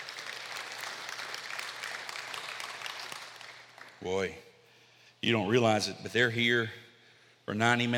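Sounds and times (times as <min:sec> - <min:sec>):
crowd applauding in a large room: 0:00.0 - 0:04.1
speech: 0:04.0 - 0:04.5, 0:05.2 - 0:06.8, 0:07.5 - 0:07.9.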